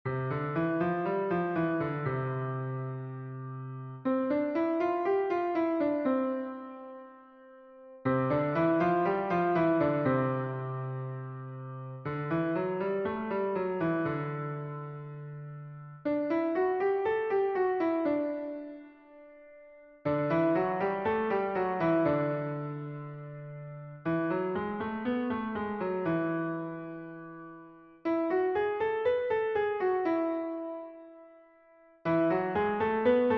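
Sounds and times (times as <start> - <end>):
piano major five finger patterns: 0.1 - 33.3.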